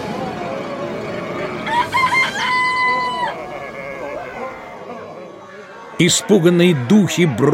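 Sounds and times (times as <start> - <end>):
rooster crowing: 0.0 - 5.8
laughter: 0.0 - 7.5
low steady murmur: 0.0 - 7.5
speech: 6.0 - 7.5.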